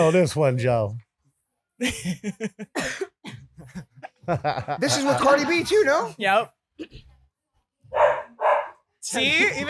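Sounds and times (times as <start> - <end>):
speech: 0.0 - 1.0, 1.8 - 7.1, 9.0 - 9.6
laughter: 1.8 - 5.7
dog barking: 7.9 - 8.9.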